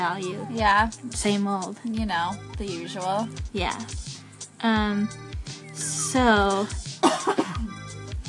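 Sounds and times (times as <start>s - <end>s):
speech: 0.0s - 7.6s
person coughing: 7.0s - 7.8s.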